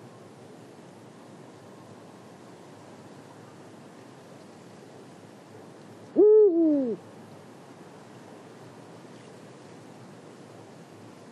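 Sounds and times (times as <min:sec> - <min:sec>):
soft hiss: 0:00.0 - 0:11.3
Eurasian eagle-owl call in Marianka, Slovakia: 0:06.1 - 0:07.0.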